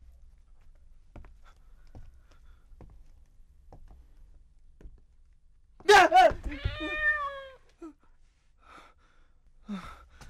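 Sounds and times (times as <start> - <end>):
cat meowing: 6.5 - 7.6.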